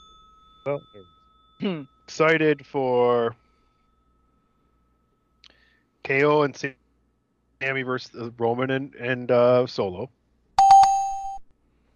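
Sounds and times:
bright doorbell-like chime bell ringing: 0.0s - 6.4s
speech: 0.6s - 3.4s, 6.0s - 6.8s, 7.6s - 10.2s.

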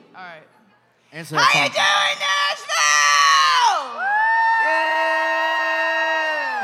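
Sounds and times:
speech: 0.2s - 3.2s
audience screaming and cheering: 3.2s - 6.6s.

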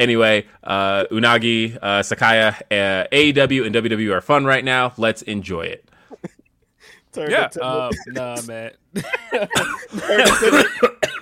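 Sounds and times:
speech: 0.0s - 6.2s, 7.1s - 11.2s
laughter: 7.3s - 11.2s
person with a lingering cough after being sick coughing: 7.6s - 8.5s, 9.1s - 11.2s.

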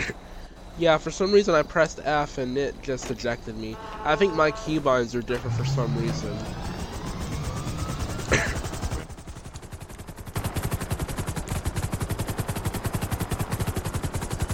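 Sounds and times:
speech: 0.8s - 6.6s
helicopter rotor chop in a video game: 4.8s - 14.5s.

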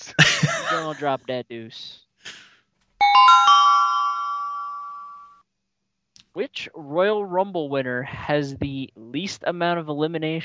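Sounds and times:
laughter: 0.0s - 1.3s
speech: 0.8s - 2.0s, 6.4s - 10.4s
bell chime ringing: 3.0s - 5.4s.

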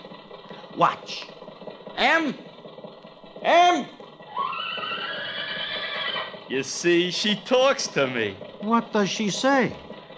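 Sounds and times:
speech: 0.8s - 1.4s, 2.0s - 2.5s, 3.4s - 4.0s, 6.5s - 9.8s
horse whinnying: 4.3s - 6.4s.

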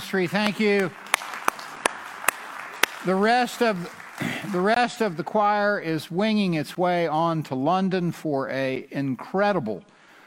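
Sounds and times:
hand claps: 0.0s - 4.9s
speech: 0.1s - 1.0s, 3.0s - 10.0s.

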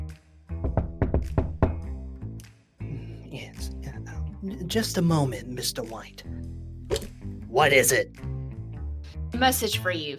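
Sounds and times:
soft music: 0.0s - 10.1s
firm knocks on an office door: 0.6s - 1.9s
speech: 4.4s - 6.6s, 7.6s - 8.3s, 9.3s - 10.1s.

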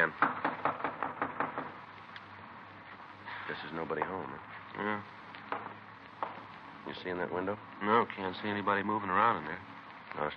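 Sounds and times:
firm knocking on the front door of a house: 0.0s - 1.8s, 5.5s - 6.4s
speech: 3.5s - 5.2s, 6.8s - 10.3s.

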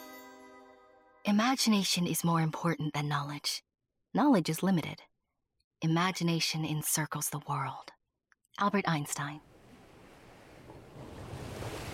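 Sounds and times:
speech: 1.2s - 5.1s, 5.8s - 8.0s, 8.6s - 9.5s
waves crashing against a cliff: 9.6s - 11.9s.

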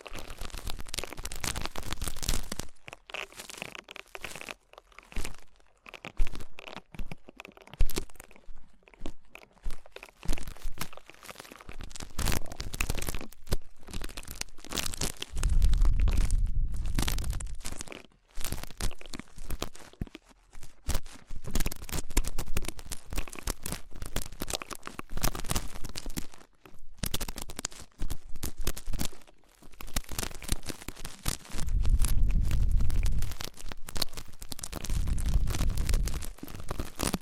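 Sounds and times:
ear cleaning crinkling and crunching scratches: 0.0s - 37.2s
low rumbling bumps: 15.4s - 17.6s, 31.6s - 33.3s, 34.8s - 36.3s.

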